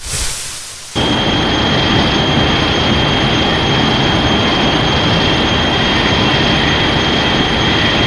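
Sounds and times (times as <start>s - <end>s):
heat ray firing: 0.0s - 4.2s
heat ray charging up: 0.0s - 7.9s.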